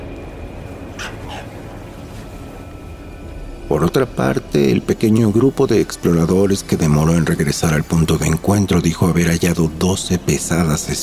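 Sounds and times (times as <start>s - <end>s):
steady outdoor hum: 0.0s - 11.0s
dogs barking: 0.8s - 2.3s
dog yelping: 1.0s - 1.7s
speech: 3.8s - 11.0s.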